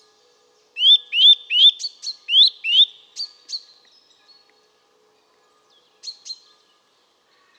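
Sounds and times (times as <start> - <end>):
Eurasian nuthatch Sitta europaea whistled calls: 0.8 - 3.3.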